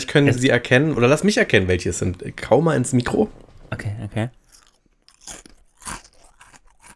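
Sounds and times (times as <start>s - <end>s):
speech: 0.1s - 4.4s
potato chips being chewed: 4.3s - 6.9s.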